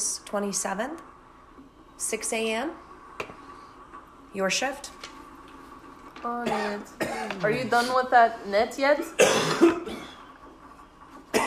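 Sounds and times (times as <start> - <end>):
speech: 0.3 - 1.1, 2.0 - 2.9, 4.3 - 5.0, 6.2 - 9.6
man coughing: 6.4 - 7.9, 9.2 - 10.2.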